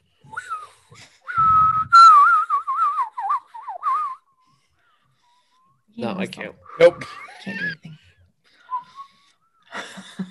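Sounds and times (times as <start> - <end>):
person whistling warbling tones: 0.2 - 4.3, 8.6 - 9.3
speech: 6.0 - 8.0
laughter: 6.8 - 8.0, 9.7 - 10.2.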